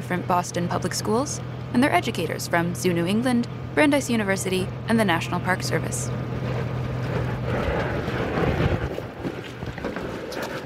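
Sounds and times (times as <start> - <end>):
small ferry boat engine droning: 0.0 - 10.6
speech: 0.1 - 6.6
wind buffeting the microphone: 6.0 - 10.6.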